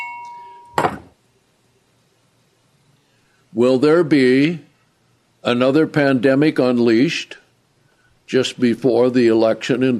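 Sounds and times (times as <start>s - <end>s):
hand bell ringing: 0.0s - 0.9s
speech: 3.6s - 4.7s, 5.4s - 7.4s, 8.3s - 9.9s.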